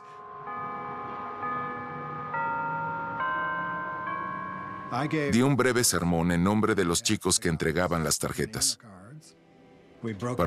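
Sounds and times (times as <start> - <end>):
church bells ringing a slow hymn melody: 0.0 - 6.0
speech: 4.9 - 9.4, 10.0 - 10.4.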